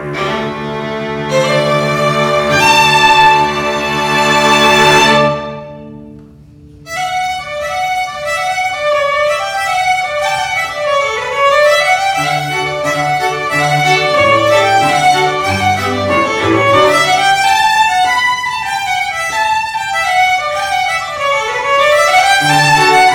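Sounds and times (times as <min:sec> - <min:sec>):
Scottish folk tunes on fiddle: 0:00.2 - 0:05.9, 0:06.8 - 0:23.1.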